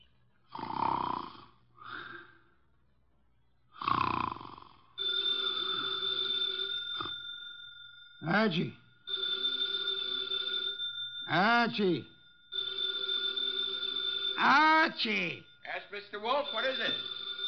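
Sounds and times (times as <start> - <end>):
man snoring loudly through his nose in a chair: 0.5 - 2.4, 3.8 - 6.0
old-fashioned telephone ringing on a desk: 5.0 - 17.4
man calling out: 8.2 - 8.8, 11.3 - 12.1, 14.4 - 17.0
speech: 8.3 - 8.8, 11.3 - 12.1, 14.4 - 17.1.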